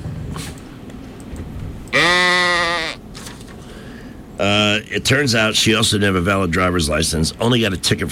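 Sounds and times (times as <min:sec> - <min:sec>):
baby goat bleating: 0:01.9 - 0:03.0
speech: 0:04.4 - 0:08.1.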